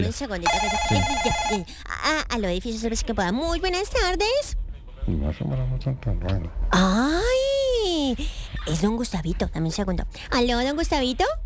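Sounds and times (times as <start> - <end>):
speech: 0.0 - 7.5, 8.1 - 11.4
telephone ringing with a bright electronic tone: 0.5 - 1.8.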